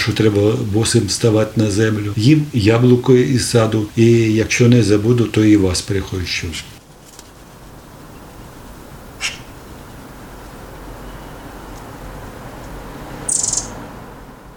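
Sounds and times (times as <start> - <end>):
speech: 0.0 - 6.8
steady outdoor hiss: 0.0 - 14.5
redstart whistled call: 9.2 - 9.6, 10.8 - 11.8, 13.1 - 13.8.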